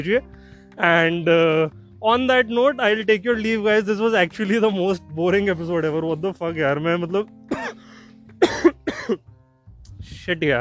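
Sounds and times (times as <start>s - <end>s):
speech: 0.0s - 7.7s, 8.4s - 9.3s, 10.3s - 10.5s
person coughing harshly: 7.5s - 7.8s, 8.4s - 9.2s.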